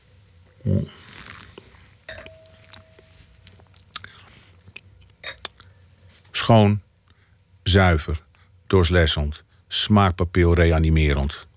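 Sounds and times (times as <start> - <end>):
speech: 0.6 - 1.0, 6.5 - 6.8, 7.7 - 11.5
faint ringing tone: 2.1 - 3.6
small wet mouth clicks and smacks: 3.4 - 5.7
wine being sipped and swallowed: 3.5 - 5.7.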